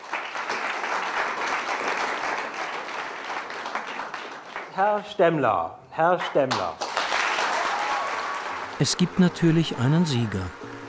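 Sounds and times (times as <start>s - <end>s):
loud audience applause voting for a contestant at a philosophy debate event: 0.0s - 4.7s, 6.8s - 10.5s
speech: 4.8s - 6.8s, 8.8s - 10.7s.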